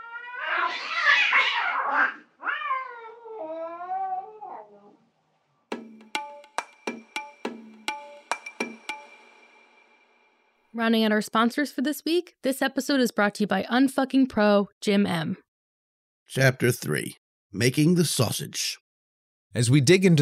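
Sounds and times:
cat yowling and meowing: 0.0 - 5.0
speech: 0.7 - 2.2, 10.8 - 15.4, 16.3 - 18.8, 19.5 - 20.2.

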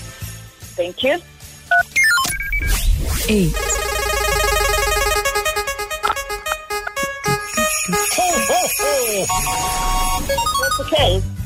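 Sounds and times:
speech: 0.8 - 2.0, 2.6 - 3.8, 7.9 - 11.3
pulsing beeps: 1.7 - 11.0
steady buzzy tone: 3.2 - 10.3
cell phone keypad beeps: 7.6 - 10.9.

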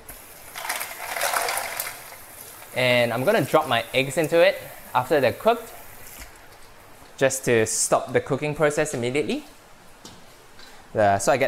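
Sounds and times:
water poured into a bowl of ice for an ice bath: 0.4 - 2.7
speech: 2.8 - 5.8, 7.2 - 9.6, 10.9 - 11.4.

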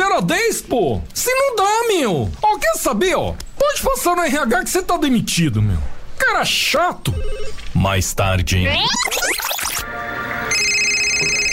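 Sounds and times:
speech: 0.2 - 10.3
telephone ringing with a steady electronic tone: 7.1 - 7.8, 10.4 - 11.5.

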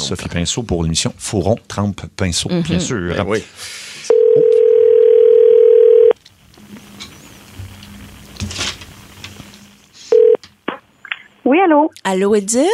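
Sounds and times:
speech: 0.1 - 4.4, 11.4 - 12.7
telephone dial tone: 4.1 - 6.2, 10.1 - 10.4.

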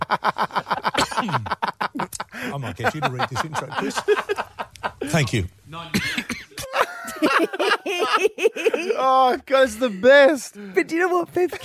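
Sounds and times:
laughter: 0.0 - 5.4, 6.0 - 10.2
speech: 0.1 - 0.6, 2.8 - 4.5, 5.1 - 5.6, 9.0 - 11.6
newsreader coughing during broadcast: 5.9 - 6.7.

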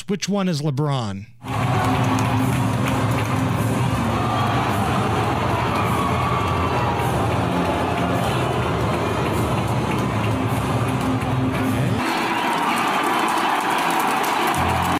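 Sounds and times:
speech: 0.1 - 2.6
stadium crowd cheering and booing: 1.4 - 14.9.

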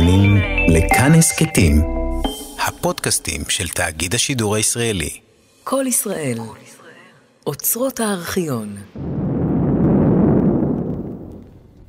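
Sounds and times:
speech: 0.7 - 2.0, 2.6 - 6.8, 7.4 - 9.1
heavy explosion of a radar station booming and echoing: 9.0 - 11.8.

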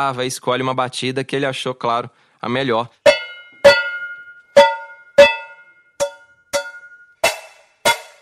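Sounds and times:
speech: 0.0 - 3.0
metal cooking pot struck, clanging: 3.1 - 8.2.

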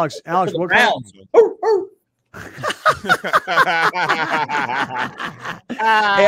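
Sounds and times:
laughter: 0.0 - 1.0, 2.4 - 6.2
speech: 0.0 - 6.2
dog barking: 1.3 - 2.0.

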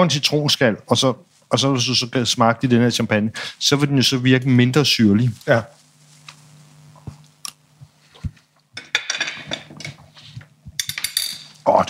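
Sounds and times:
speech: 0.0 - 5.8
hum: 0.0 - 11.8
oyster shell and cutlery clinking: 10.8 - 11.6.

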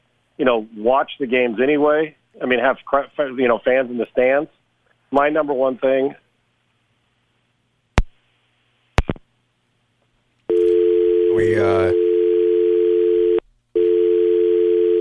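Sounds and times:
speech: 0.4 - 6.2, 11.4 - 12.0
phone line dial tone after a dropped call: 10.5 - 15.0.

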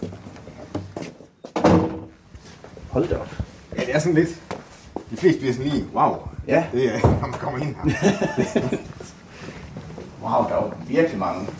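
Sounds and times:
door being opened into a basement storeroom: 0.7 - 2.1
speech: 3.0 - 4.5, 5.1 - 8.9, 10.3 - 11.5
laughter: 7.6 - 9.3.

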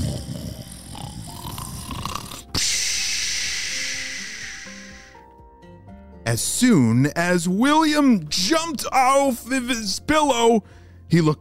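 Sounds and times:
loud rattling snore: 0.0 - 2.6
long breathy hiss: 0.0 - 5.4
speech: 6.3 - 11.3.

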